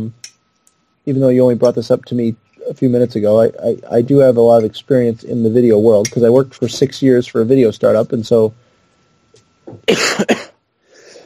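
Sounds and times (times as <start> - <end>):
speech: 0.0 - 0.2, 1.0 - 8.6, 9.7 - 10.4
person coughing: 9.8 - 10.6
breathy exhale: 10.8 - 11.2.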